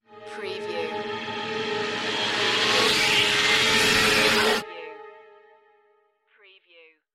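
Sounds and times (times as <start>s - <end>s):
trailer cold climax sweep effect: 0.0s - 5.4s.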